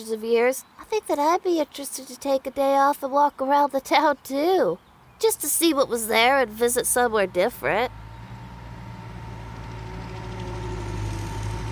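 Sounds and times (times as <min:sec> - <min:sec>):
speech: 0:00.0 - 0:08.0
low diesel engine rumble of a heavy vehicle: 0:05.2 - 0:11.7.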